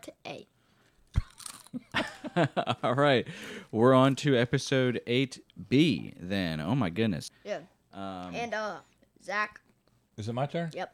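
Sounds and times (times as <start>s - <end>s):
barbecue-flavored potato chips crunching: 1.1s - 1.8s
speech: 2.4s - 9.6s, 10.2s - 10.9s.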